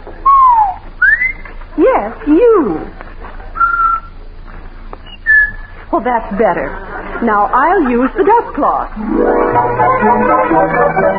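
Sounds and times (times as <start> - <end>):
person whistling while cleaning the house: 0.2 - 1.4, 3.6 - 4.2, 5.1 - 5.7
speech: 1.8 - 3.0, 5.9 - 11.1
laughter: 6.5 - 9.0.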